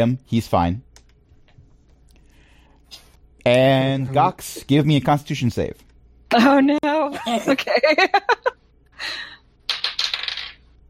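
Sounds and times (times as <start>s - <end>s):
speech: 0.0s - 0.9s, 2.9s - 9.4s
dice clattering across a hard tabletop: 9.6s - 10.8s.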